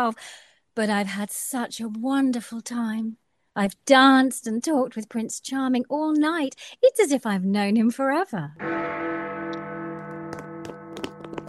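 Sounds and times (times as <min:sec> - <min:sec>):
speech: 0:00.0 - 0:09.3
large clock bell tolling: 0:08.6 - 0:11.4.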